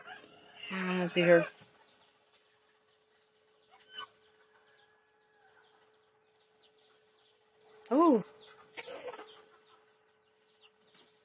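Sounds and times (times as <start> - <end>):
steady low hum: 0.0 - 11.2
speech: 0.7 - 1.6, 8.1 - 8.3
baby chicken high peeping chirps: 1.2 - 11.2
baby chicken clucking: 8.5 - 9.9.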